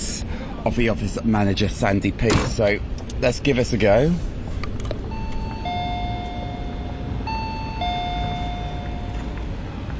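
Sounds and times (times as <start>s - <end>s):
steady rumble: 0.0s - 9.9s
speech: 0.6s - 4.3s
electronic two-note door chime at studio entrance: 5.1s - 9.4s.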